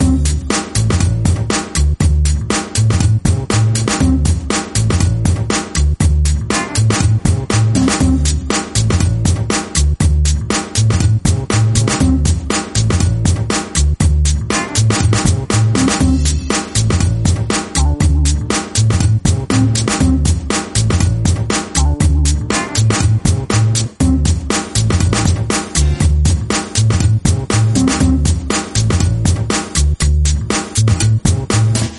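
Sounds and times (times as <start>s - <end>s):
energetic funky breakbeat loop: 0.0s - 31.9s.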